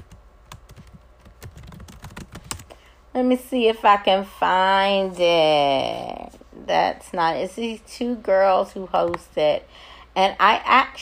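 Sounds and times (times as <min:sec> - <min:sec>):
typing on a computer keyboard: 0:00.0 - 0:02.7
speech: 0:03.2 - 0:11.0.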